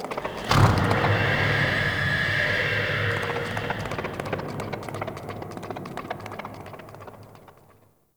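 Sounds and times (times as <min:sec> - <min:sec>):
ghost horse: 0:00.1 - 0:07.8.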